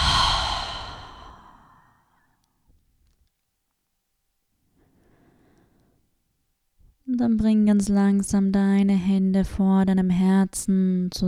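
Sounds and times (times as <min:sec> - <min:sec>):
long deep breath exhaled through an open mouth during a guided breathing exercise: 0:00.0 - 0:01.9
speech: 0:07.2 - 0:11.2.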